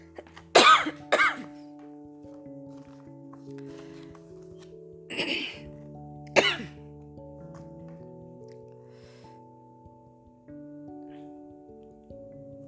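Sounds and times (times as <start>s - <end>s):
person coughing dryly from cold air conditioning: 0.5s - 1.5s, 5.1s - 5.6s, 6.4s - 6.8s.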